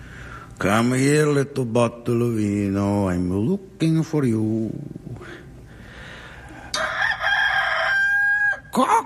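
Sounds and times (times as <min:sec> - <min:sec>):
speech: 0:00.6 - 0:05.4
person imitating a rooster crow: 0:06.7 - 0:08.9.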